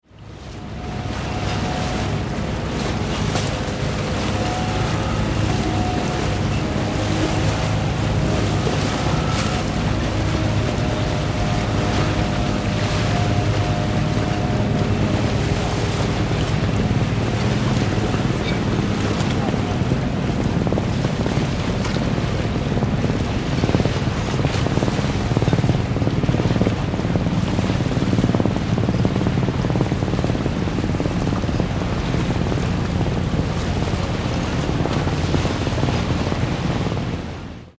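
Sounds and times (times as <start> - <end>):
motorized boats leaving harbour at harbour mouth: 0.0 - 37.7.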